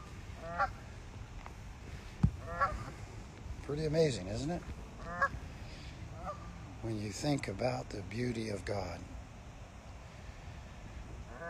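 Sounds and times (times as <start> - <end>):
ducks calling on the water: 0.0 - 0.8, 2.4 - 3.0, 5.0 - 6.6, 11.3 - 11.4
steady outdoor hiss: 0.0 - 11.4
speech: 3.7 - 5.4, 6.8 - 9.2.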